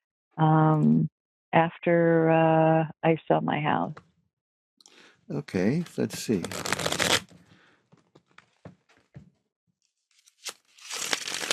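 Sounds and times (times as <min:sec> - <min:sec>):
speech: 0:00.4 - 0:04.1, 0:05.3 - 0:06.8
tarot cards rustling as they are shuffled by hand: 0:06.0 - 0:07.4, 0:10.1 - 0:11.5
tarot cards riffling: 0:06.2 - 0:07.4, 0:10.2 - 0:11.5.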